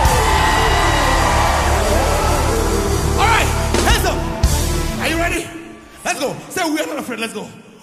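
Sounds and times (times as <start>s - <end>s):
large congregation screaming and cheering: 0.0s - 4.8s
speech: 6.2s - 7.7s.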